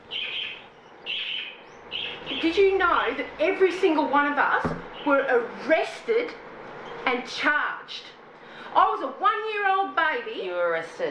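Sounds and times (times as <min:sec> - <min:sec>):
small pet house birds chirping in a home in South Australia: 0:00.0 - 0:03.4, 0:04.7 - 0:05.3, 0:06.7 - 0:07.1
speech: 0:02.4 - 0:06.4, 0:07.0 - 0:08.1, 0:08.7 - 0:11.0.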